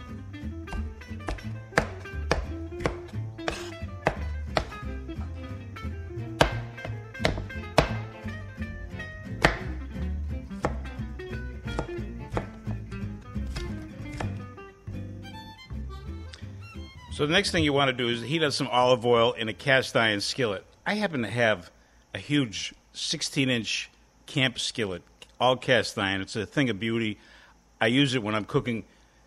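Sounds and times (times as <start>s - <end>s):
knife slicing green peppers: 0.0s - 5.4s, 6.4s - 8.2s, 9.3s - 12.8s, 13.4s - 14.5s
speech: 17.2s - 28.9s.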